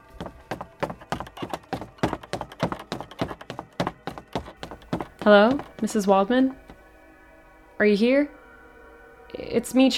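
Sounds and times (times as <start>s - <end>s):
heavy running footsteps on wooden floorboards or stairs inside a house: 0.0s - 6.8s
speech: 5.2s - 6.6s, 7.8s - 8.4s, 9.5s - 9.9s.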